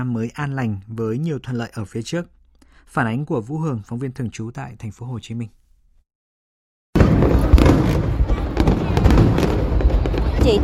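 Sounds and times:
speech: 0.0s - 5.6s, 10.4s - 10.6s
fireworks exploding: 7.0s - 10.6s.

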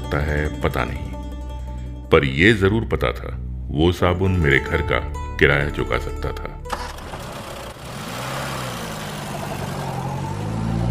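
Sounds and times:
speech: 0.1s - 1.1s, 2.1s - 6.5s
taxi engine idling in heavy traffic: 6.6s - 10.8s.

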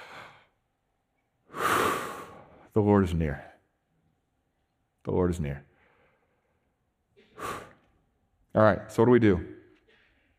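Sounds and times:
deep breath: 0.0s - 0.6s, 1.4s - 2.7s, 5.7s - 8.0s
speech: 2.8s - 3.5s, 5.0s - 5.7s, 8.6s - 9.6s.

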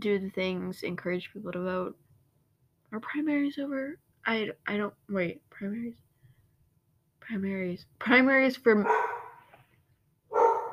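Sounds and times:
speech: 0.0s - 2.0s, 2.9s - 6.0s, 7.3s - 9.1s
pet dog barking: 8.8s - 9.5s, 10.3s - 10.7s.

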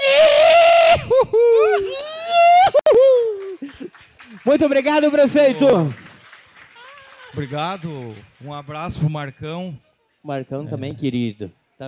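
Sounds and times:
man giving a celebratory whoop: 0.0s - 3.6s
speech: 4.4s - 6.0s, 7.3s - 11.8s.

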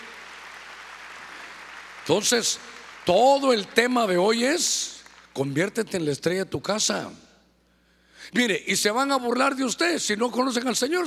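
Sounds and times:
crowd clapping loudly: 0.0s - 4.0s, 5.0s - 5.4s
speech: 2.1s - 7.2s, 8.2s - 11.0s.

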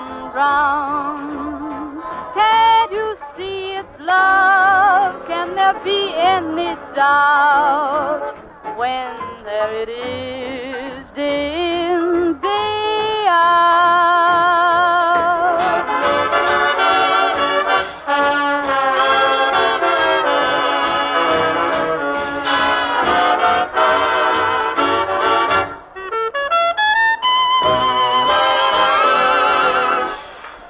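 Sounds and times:
swing big band with brass and reeds in radio broadcast: 0.0s - 30.6s
speech: 0.4s - 1.4s, 5.4s - 10.6s.

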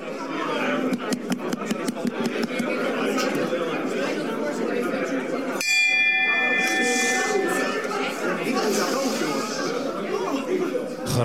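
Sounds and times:
overlapping crowd chatter at a council meeting: 0.0s - 11.2s
chairman's bell ringing to call order at a council meeting: 5.6s - 9.0s
laughter: 6.6s - 11.2s.

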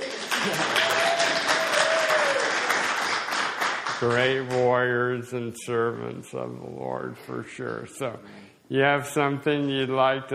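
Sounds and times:
audience applause: 0.0s - 4.6s
speech: 0.4s - 0.8s, 4.0s - 10.3s.

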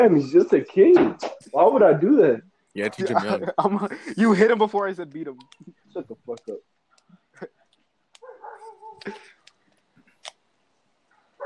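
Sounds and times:
speech: 0.0s - 6.6s, 9.0s - 9.3s
dog yelping: 8.2s - 9.3s.

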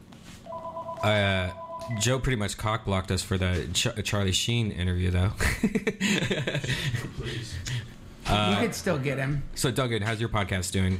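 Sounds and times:
telephone ringing: 0.5s - 2.2s
speech: 1.0s - 10.9s
laughter: 5.4s - 7.6s.

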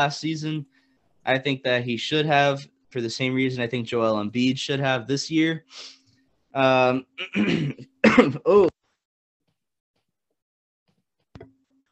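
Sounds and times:
speech: 0.0s - 6.0s, 6.6s - 8.7s
loud throat-clearing cough with rough voiced bursts: 7.2s - 8.7s.

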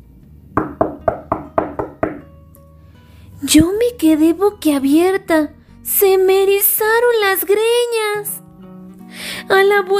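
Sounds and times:
knocking on a door: 0.6s - 2.3s
speech: 3.4s - 8.4s, 9.5s - 9.9s.

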